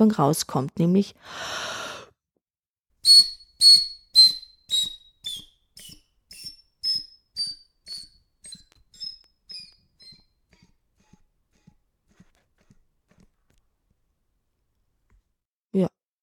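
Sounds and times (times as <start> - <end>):
speech: 0.0 - 1.8
soft breaths and airy puffs with faint whistling edge: 1.2 - 2.1
sudden loud exhale: 1.2 - 2.1.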